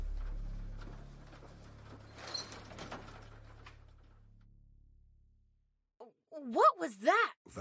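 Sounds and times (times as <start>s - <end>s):
daycare door opening and closing: 0.1s - 4.3s
speech: 6.4s - 7.5s.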